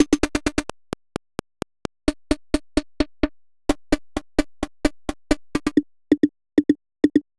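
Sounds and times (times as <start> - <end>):
glitch techno drum kit: 0.0 - 7.3.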